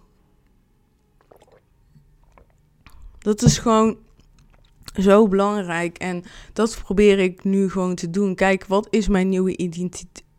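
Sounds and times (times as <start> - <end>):
person sipping water: 1.2 - 3.2, 4.1 - 5.0
speech: 3.3 - 4.0, 5.0 - 10.2.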